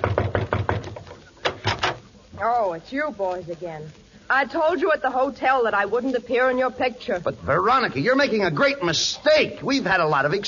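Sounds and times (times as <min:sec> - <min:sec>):
knocking on a wooden dressing room door: 0:00.0 - 0:01.0
speech: 0:02.4 - 0:10.4.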